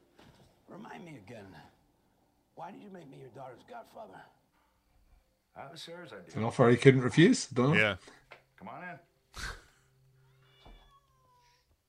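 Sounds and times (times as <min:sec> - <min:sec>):
speech: 0:00.7 - 0:01.8, 0:02.6 - 0:04.4, 0:05.6 - 0:09.6
cat meowing: 0:10.2 - 0:11.7.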